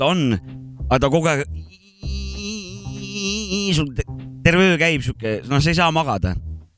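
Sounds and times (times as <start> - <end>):
speech: 0.0 - 1.6, 3.7 - 6.5
voice imitating a whining mosquito: 1.6 - 4.0.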